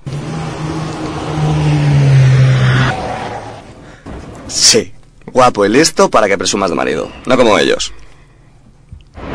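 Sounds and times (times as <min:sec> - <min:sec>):
car engine starting and revving: 0:00.0 - 0:03.8
speech: 0:04.7 - 0:08.0.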